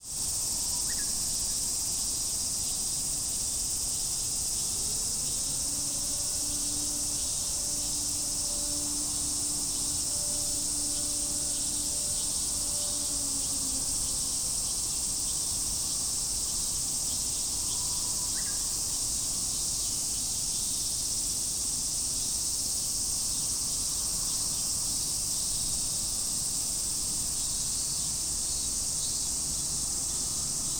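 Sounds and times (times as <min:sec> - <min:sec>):
cicadas singing in overgrown grass on a university back mountain in Fukushima: 0:00.0 - 0:30.7
siren announcing the time: 0:04.8 - 0:14.8.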